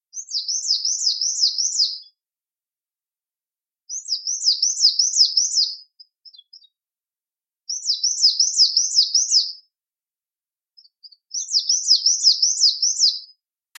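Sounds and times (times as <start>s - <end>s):
male coal tit singing: 0.1s - 2.2s, 3.9s - 6.7s, 7.7s - 9.6s, 10.8s - 13.7s.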